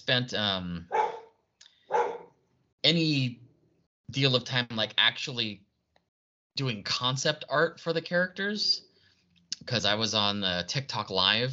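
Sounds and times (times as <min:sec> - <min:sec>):
speech: 0:00.1 - 0:01.0, 0:02.9 - 0:03.4, 0:04.1 - 0:05.7, 0:06.6 - 0:08.9, 0:09.6 - 0:11.5
dog barking: 0:00.9 - 0:02.4.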